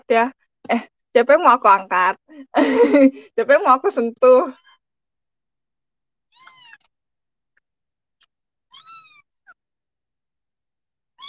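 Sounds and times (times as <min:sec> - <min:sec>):
speech: 0:00.1 - 0:04.7
laughter: 0:02.4 - 0:03.3
cat meowing: 0:06.3 - 0:06.9, 0:08.7 - 0:09.2.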